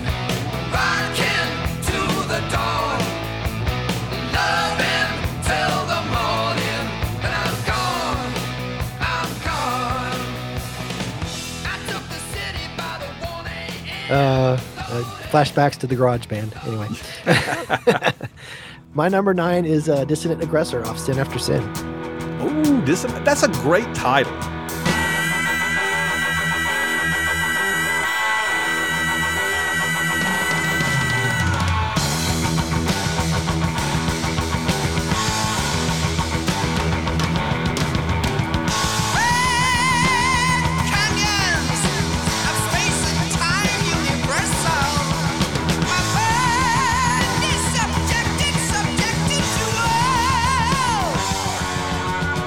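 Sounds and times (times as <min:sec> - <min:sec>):
heavy metal song with guitars and drums: 0:00.0 - 0:18.0, 0:19.8 - 0:52.4
speech: 0:14.1 - 0:14.4, 0:15.0 - 0:18.2, 0:19.0 - 0:24.6
laughter: 0:17.0 - 0:18.5
high wailing vocal scream: 0:24.9 - 0:32.0.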